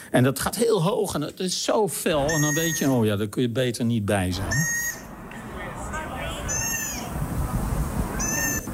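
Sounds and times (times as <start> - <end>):
speech: 0.1 - 4.8
cat meowing: 6.4 - 7.1, 8.2 - 8.7.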